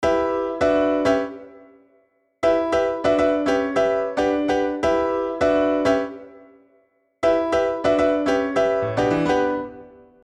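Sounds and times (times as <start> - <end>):
piano harmony: 0.0 - 1.8, 2.4 - 10.2.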